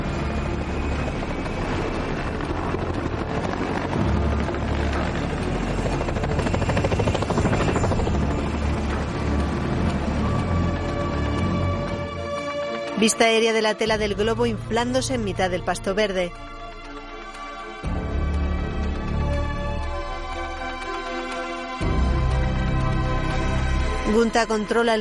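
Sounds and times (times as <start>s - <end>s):
helicopter taking off with engine and rotor roar: 0.0s - 25.0s
speech: 13.0s - 16.6s, 24.1s - 25.0s.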